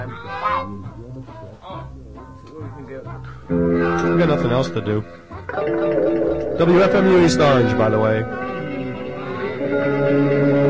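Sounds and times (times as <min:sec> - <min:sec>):
ducks quacking: 0:00.0 - 0:00.7
speech: 0:02.9 - 0:08.6, 0:09.8 - 0:10.6.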